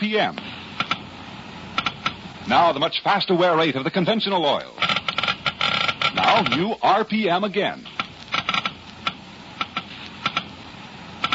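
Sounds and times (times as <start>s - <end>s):
faint hiss: 0.0s - 11.3s
speech: 0.1s - 0.5s, 2.5s - 4.8s, 6.2s - 7.9s
Geiger counter clicking: 1.8s - 2.2s, 4.8s - 6.8s, 8.0s - 10.5s.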